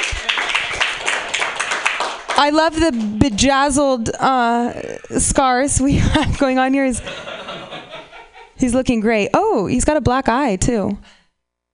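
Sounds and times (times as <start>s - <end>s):
audience applauding: 0.0s - 3.4s
speech: 2.4s - 7.4s, 8.6s - 11.2s
laughter: 5.8s - 8.7s.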